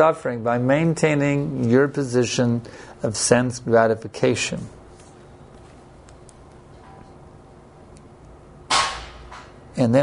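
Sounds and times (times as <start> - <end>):
speech: 0.0 - 4.8, 9.8 - 10.0
something striking metal outside: 8.7 - 9.6.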